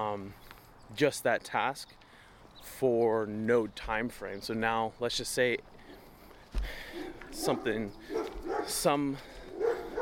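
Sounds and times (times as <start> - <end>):
speech: 0.0 - 2.0, 2.6 - 5.8, 6.6 - 9.4
dogs barking outdoors during a walk: 6.8 - 10.0.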